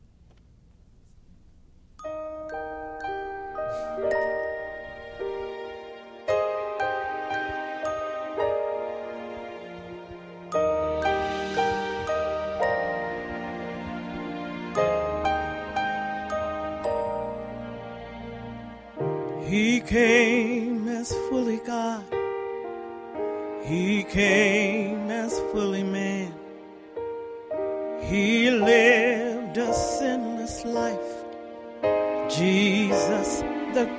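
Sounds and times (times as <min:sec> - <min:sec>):
warm musical backing: 0:00.3 - 0:33.9
little bells chiming in a Christmas song: 0:02.0 - 0:05.6, 0:10.5 - 0:14.1, 0:14.8 - 0:17.6.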